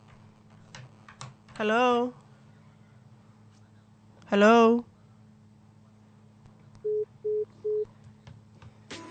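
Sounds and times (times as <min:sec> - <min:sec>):
speech: 0:01.6 - 0:02.2, 0:04.3 - 0:04.9
telephone line tone beeps after a caller disconnects: 0:06.8 - 0:07.9.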